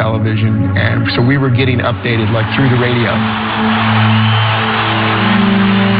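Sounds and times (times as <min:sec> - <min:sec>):
speech: 0:00.0 - 0:04.4
large stadium crowd of fans cheering and yelling: 0:01.9 - 0:05.9.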